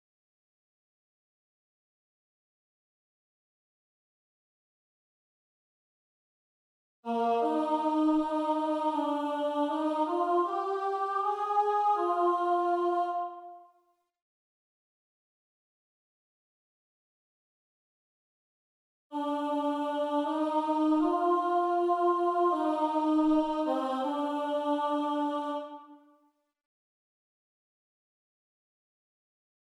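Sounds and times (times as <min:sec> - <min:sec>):
contralto voices singing: 0:07.1 - 0:13.6, 0:19.1 - 0:26.1.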